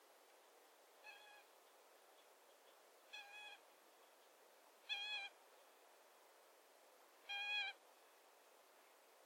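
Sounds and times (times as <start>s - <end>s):
Eurasian coot calling: 1.0s - 1.5s, 3.1s - 3.6s, 4.9s - 5.4s, 7.3s - 7.8s.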